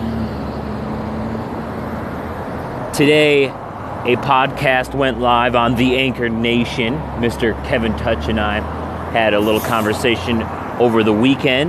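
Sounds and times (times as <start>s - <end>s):
passing cars roaring at a bus stop: 0.0s - 11.6s
speech: 3.0s - 11.6s.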